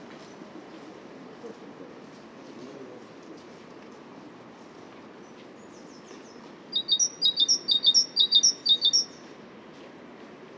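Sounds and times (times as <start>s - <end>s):
great tit song: 6.8s - 9.2s.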